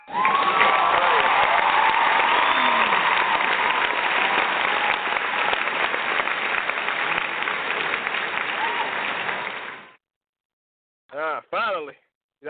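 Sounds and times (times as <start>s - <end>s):
cheers from a crowd: 0.0s - 10.0s
loud sustained crowd applause: 0.0s - 10.0s
whistles from a crowd: 2.2s - 3.3s.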